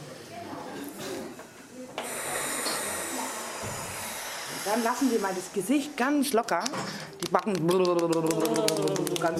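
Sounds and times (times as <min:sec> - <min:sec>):
deep breath in and out: 0:02.0 - 0:05.5
speech: 0:04.7 - 0:09.3.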